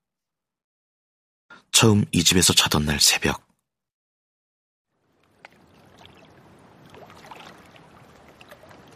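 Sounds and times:
speech: 0:01.6 - 0:03.5
incoming tide water lapping and sloshing against a stone step outside a door at dawn: 0:05.0 - 0:08.9
small splashes of tide water: 0:05.0 - 0:08.9.

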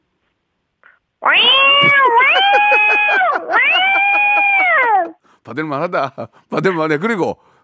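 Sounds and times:
human voice imitating excited cat meows: 0:01.2 - 0:05.2
laughter: 0:01.9 - 0:05.2
speech: 0:05.5 - 0:07.6.

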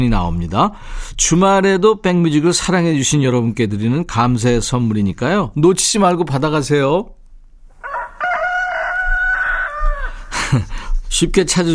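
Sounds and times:
speech: 0:00.0 - 0:07.2, 0:10.5 - 0:11.7
rooster crowing: 0:07.8 - 0:10.3
laughter: 0:10.3 - 0:10.8.

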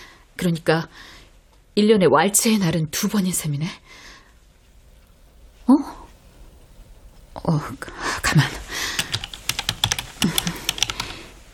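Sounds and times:
speech: 0:00.4 - 0:01.2, 0:01.8 - 0:04.1, 0:07.4 - 0:08.7
rapid typing on a computer keyboard: 0:09.0 - 0:11.2.

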